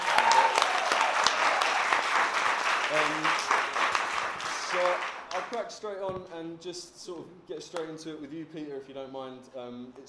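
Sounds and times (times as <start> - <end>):
crowd cheering: 0.0 - 5.5
audience applause: 0.0 - 5.6
speech: 2.9 - 3.5, 4.7 - 10.0.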